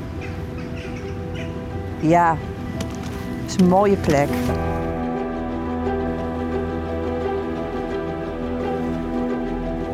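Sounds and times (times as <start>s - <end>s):
birds calling outdoors by a garden pond: 0.0s - 4.3s
steady low rumble of wind: 0.0s - 9.9s
speech: 2.0s - 2.5s, 3.5s - 4.8s.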